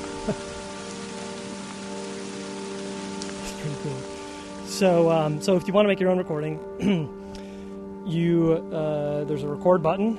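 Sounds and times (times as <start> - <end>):
rain pattering on a surface: 0.0 - 6.6
speech: 0.2 - 0.6, 4.8 - 7.2, 8.0 - 10.1.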